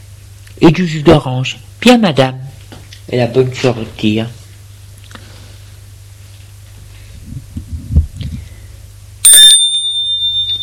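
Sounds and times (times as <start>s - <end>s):
speech: 0.6s - 2.4s, 3.1s - 4.4s
gate bell ringing with a clear metallic tone: 9.2s - 10.6s.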